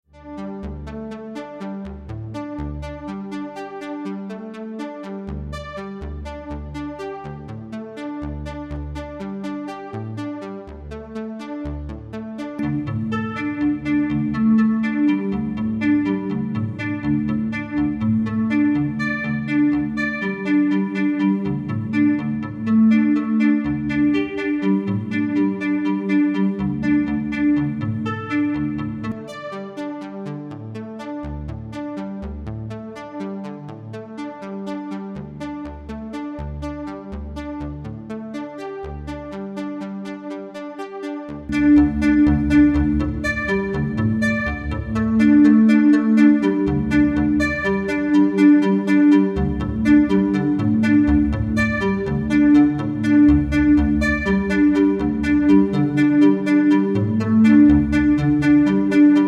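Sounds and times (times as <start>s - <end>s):
filtered strings: 11.9s - 29.8s, 41.4s - 59.2s.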